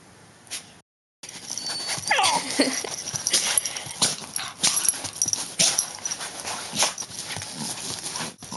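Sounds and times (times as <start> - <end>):
scuffling and thumping: 1.2 - 8.4
dog yipping and whimpering: 1.3 - 7.0.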